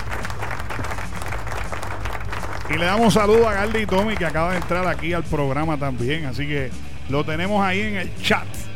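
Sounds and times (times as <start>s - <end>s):
crowd applause: 0.0s - 5.2s
speech: 2.7s - 8.7s.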